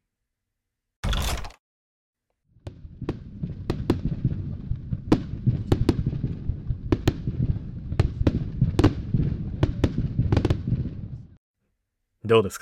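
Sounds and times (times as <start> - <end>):
fireworks bursting with sharp bangs: 2.6 - 11.4
speech: 12.3 - 12.6.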